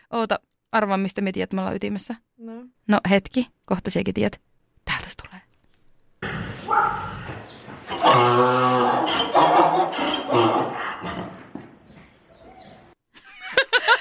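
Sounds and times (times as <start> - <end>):
speech: 0.1 - 5.0
mule braying: 6.2 - 13.0
laughter: 13.2 - 13.9.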